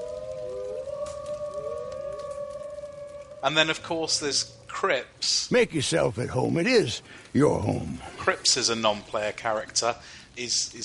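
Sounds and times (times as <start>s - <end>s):
wolves howling: 0.0s - 4.8s
speech: 3.4s - 10.8s.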